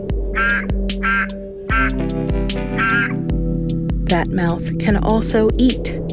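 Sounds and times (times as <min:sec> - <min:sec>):
Cranwell's horned frog croaking in loud nasal bursts: 0:00.2 - 0:03.3
speech: 0:04.1 - 0:06.0.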